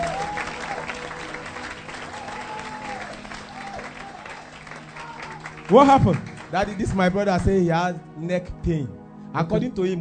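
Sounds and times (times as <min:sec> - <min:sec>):
congregation applauding at a church healing service: 0:00.0 - 0:07.6
speech: 0:05.7 - 0:09.9.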